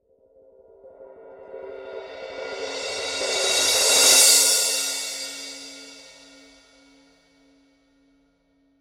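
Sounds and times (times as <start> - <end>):
16 inch thin crash cymbal swell: 1.4 - 6.9.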